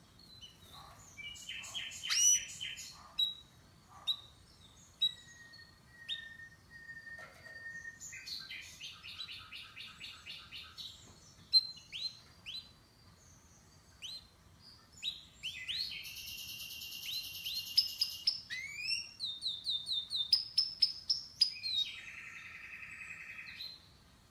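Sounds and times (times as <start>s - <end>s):
canary-type song: 0.0s - 24.2s.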